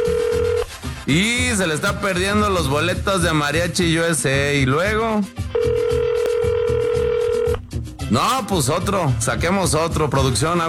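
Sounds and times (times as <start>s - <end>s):
telephone ringing tone while a caller waits for an answer: 0.0s - 0.7s, 5.5s - 7.6s
speech: 1.1s - 6.0s, 8.1s - 10.6s.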